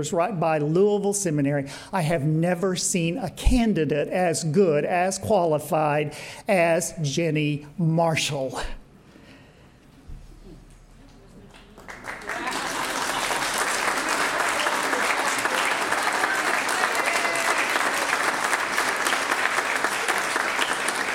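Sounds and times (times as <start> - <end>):
speech: 0.0 - 8.8
large audience applause: 11.5 - 21.1.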